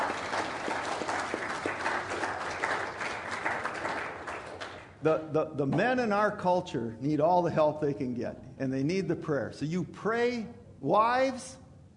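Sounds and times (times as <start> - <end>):
large audience applauding in a big room: 0.0 - 4.9
speech: 5.0 - 11.6.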